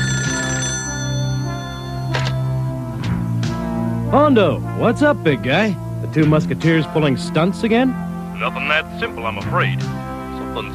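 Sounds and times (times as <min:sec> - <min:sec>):
telephone ringing with a buzzy bell tone: 0:00.0 - 0:02.8
speech: 0:04.1 - 0:10.0, 0:10.6 - 0:10.7.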